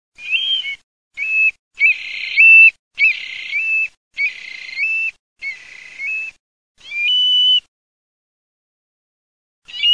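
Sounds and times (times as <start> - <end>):
occhione bird calling: 0.2 - 7.7, 9.7 - 9.9.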